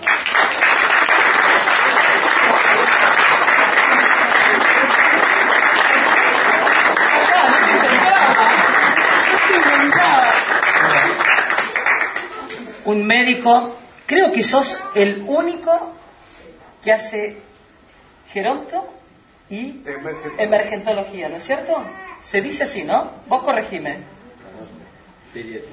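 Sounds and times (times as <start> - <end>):
sizable audience applauding at a political candidate list presentation in Bolívar: 0.0 - 12.7
people chuckling: 2.3 - 12.8
speech: 12.9 - 16.0, 16.8 - 17.5, 18.3 - 25.7.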